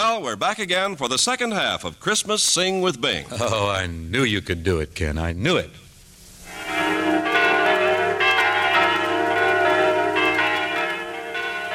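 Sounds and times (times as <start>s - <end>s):
speech: 0.1s - 5.8s
church bells pealing: 6.5s - 11.7s.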